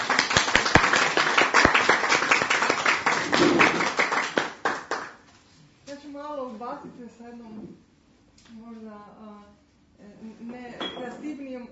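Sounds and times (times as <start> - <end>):
small audience clapping at a presentation: 0.0 - 5.3.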